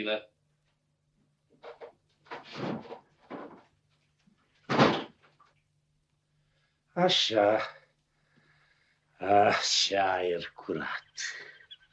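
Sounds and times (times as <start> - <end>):
speech: 0.0 - 0.3, 7.0 - 7.8, 9.2 - 11.5
faint low hum: 0.0 - 11.9
terrace door knocks and scrapes being opened: 1.6 - 3.6
terrace door thud: 1.6 - 3.6, 4.7 - 5.2.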